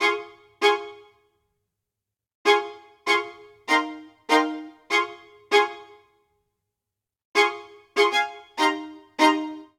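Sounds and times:
string quartet MIDI phrase in F minor: 0:02.5 - 0:06.0, 0:07.4 - 0:09.7.

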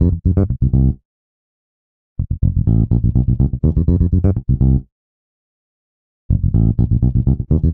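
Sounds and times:
funk bass line in C major: 0:00.0 - 0:01.0, 0:02.2 - 0:04.9, 0:06.3 - 0:07.7.

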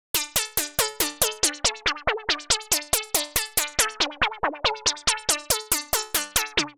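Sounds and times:
music clip in C minor at tempo one hundred forty: 0:00.2 - 0:06.7.

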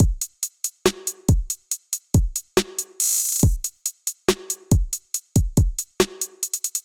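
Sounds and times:
trap drum kit: 0:00.0 - 0:06.8.

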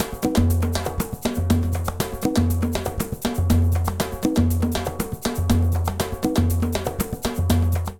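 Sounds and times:
candombe Latin percussion: 0:00.0 - 0:07.9.

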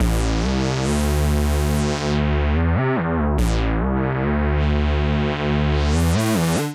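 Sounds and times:
house bassline in A minor: 0:00.0 - 0:06.7.

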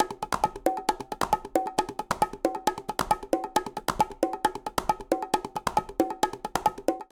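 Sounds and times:
rhumba rhythm on bongo and quinta Latin percussion: 0:00.0 - 0:07.0.

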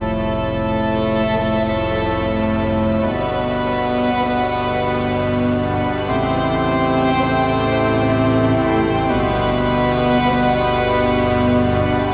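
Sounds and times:
mournful strings motif in A minor: 0:00.0 - 0:12.1.

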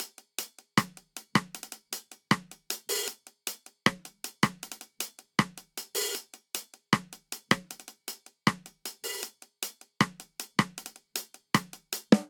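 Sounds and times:
reggae hi-hat: 0:00.0 - 0:12.1
reggae snare drum: 0:00.0 - 0:12.2.

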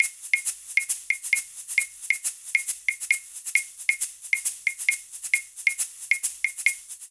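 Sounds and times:
rhumba shaker: 0:00.0 - 0:07.0.

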